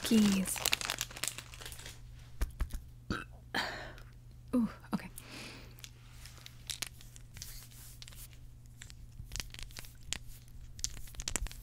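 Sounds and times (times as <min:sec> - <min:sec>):
plastic packaging crinkling: 0:00.0 - 0:02.0, 0:05.8 - 0:11.6
scissors cutting plastic packaging of a chocolate-covered corn-flake-like snack: 0:00.0 - 0:02.0
low steady hum: 0:00.0 - 0:11.6
speech: 0:00.1 - 0:00.6, 0:04.6 - 0:04.8.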